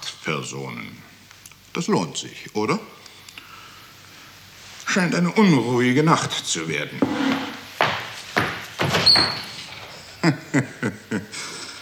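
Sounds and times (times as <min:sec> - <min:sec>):
speech: 0:00.2 - 0:01.1, 0:01.8 - 0:03.0, 0:05.0 - 0:07.4, 0:09.1 - 0:09.6, 0:10.2 - 0:11.6
knocks: 0:07.0 - 0:10.0
toilet door squeaking open: 0:08.4 - 0:10.2
laughter: 0:09.5 - 0:11.7.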